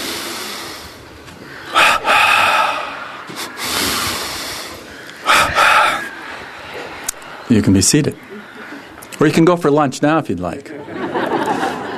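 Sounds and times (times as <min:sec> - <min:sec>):
group breathing in and out together: 0:00.0 - 0:07.5, 0:08.2 - 0:09.1
laughter: 0:05.5 - 0:09.1, 0:10.5 - 0:11.9
speech: 0:07.5 - 0:08.3, 0:09.2 - 0:10.9.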